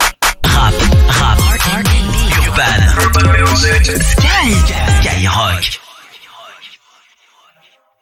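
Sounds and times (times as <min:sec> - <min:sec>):
rap and RnB jingle: 0:00.5 - 0:05.8.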